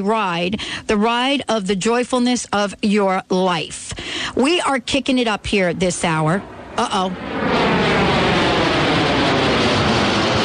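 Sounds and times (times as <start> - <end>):
speech: 0.0 - 7.5
loud steady jet engine roar of an aircraft taking off: 3.9 - 10.4.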